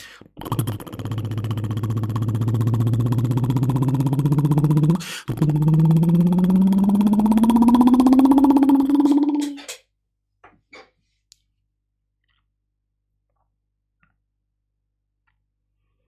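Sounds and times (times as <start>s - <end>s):
person imitating a revving motorcycle with buzzing lips: 0.4s - 9.5s.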